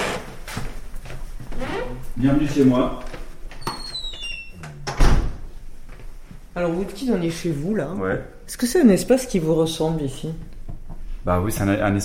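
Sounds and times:
creaky door of a second-floor home creaking open: 0.0 - 0.6, 1.5 - 2.0, 3.5 - 5.3
speech: 2.2 - 3.1, 6.6 - 10.6, 11.2 - 12.0
door shutting with a dull thud: 3.6 - 5.4.

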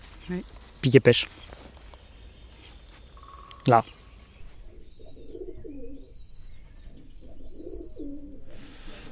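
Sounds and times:
speech: 0.3 - 1.6, 3.6 - 4.0
faint high chirps from other birds: 0.3 - 8.1
dove-like bird cooing: 3.2 - 6.2, 6.9 - 9.1.

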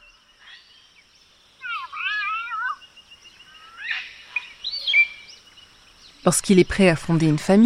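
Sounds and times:
palm cockatoo calling: 1.6 - 5.3
speech: 6.2 - 7.6.

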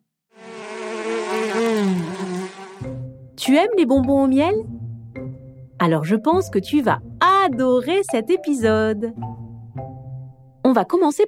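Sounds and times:
bees buzzing: 0.4 - 3.0
speech: 3.4 - 4.7, 5.8 - 9.3, 10.7 - 11.2.

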